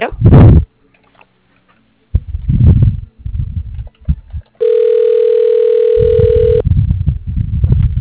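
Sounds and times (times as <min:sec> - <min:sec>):
low bursts of sound: 0:00.0 - 0:00.7, 0:02.1 - 0:04.5, 0:06.0 - 0:07.9
telephone ringing tone during a call transfer to voicemail: 0:04.6 - 0:06.6.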